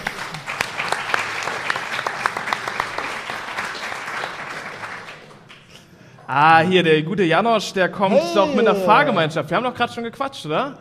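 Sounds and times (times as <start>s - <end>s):
live audience applause: 0.0s - 5.8s
speech: 6.3s - 10.7s.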